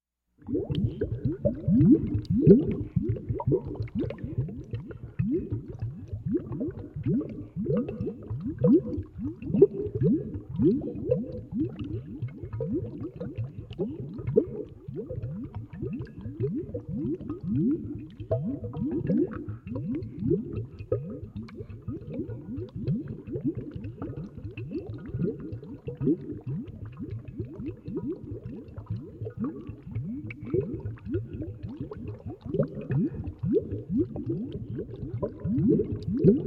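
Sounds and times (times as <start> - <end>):
heavy solution boiling: 0.4 - 36.4.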